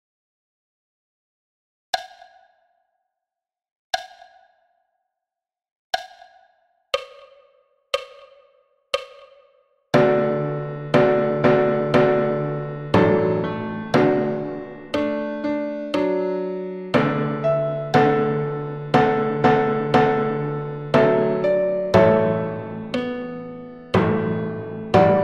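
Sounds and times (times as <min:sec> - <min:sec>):
timpani: 0:10.0 - 0:16.2, 0:16.9 - 0:25.2
piano: 0:10.0 - 0:25.2.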